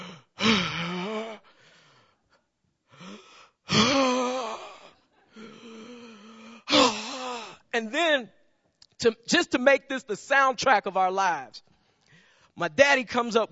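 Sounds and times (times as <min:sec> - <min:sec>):
person imitating heavy labored breathing of a man in poor physical condition: 0:00.0 - 0:01.6, 0:02.9 - 0:07.6
speech: 0:07.8 - 0:08.4, 0:09.0 - 0:11.7, 0:12.6 - 0:13.5.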